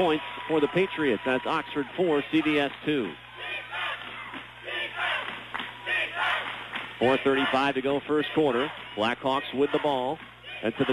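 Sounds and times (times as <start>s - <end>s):
speech: 0.0s - 3.2s, 7.0s - 10.9s
basketball game cheering section chanting defense: 3.3s - 10.9s.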